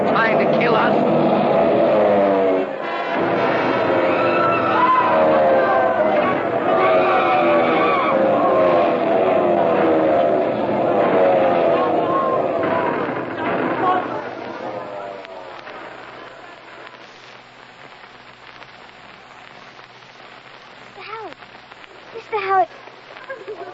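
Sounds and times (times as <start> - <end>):
German warplane engines diving low toward a road and a bus: 0.0 - 15.8
indistinct crowd voices: 0.0 - 23.7.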